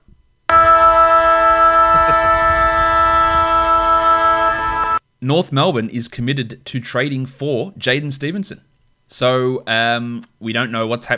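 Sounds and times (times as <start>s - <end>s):
breaking news siren sound effect: 0.5s - 5.0s
speech: 5.2s - 11.1s.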